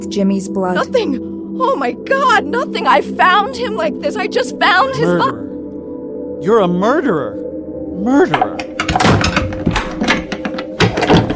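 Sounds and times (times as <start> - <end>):
speech: 0.0 - 5.4, 6.4 - 9.1
lock tumblers clunking and rattling as they tighten: 8.4 - 11.3
heavy laboratory door slamming shut: 8.7 - 11.3.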